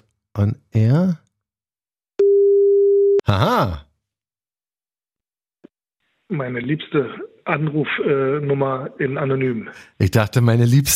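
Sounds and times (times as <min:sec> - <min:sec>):
speech: 0:00.4 - 0:01.2, 0:03.3 - 0:03.8, 0:06.3 - 0:10.9
electronic telephone line tone from a new telephone system: 0:02.2 - 0:03.2.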